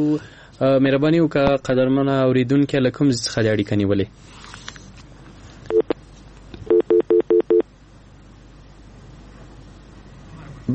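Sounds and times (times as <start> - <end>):
speech: 0.0 - 4.5
telephone tones as a call connects: 5.7 - 6.0, 6.7 - 7.6.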